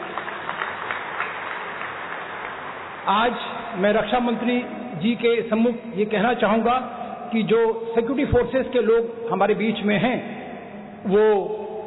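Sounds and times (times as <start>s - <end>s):
crowd applauding: 0.0s - 3.4s
speech: 3.1s - 10.3s, 11.0s - 11.6s.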